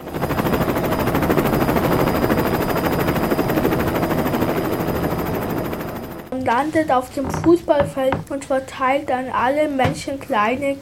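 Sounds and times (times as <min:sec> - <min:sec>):
helicopter engine roar: 0:00.0 - 0:06.4
helicopter rotor chopping: 0:00.0 - 0:10.8
speech: 0:06.5 - 0:10.8.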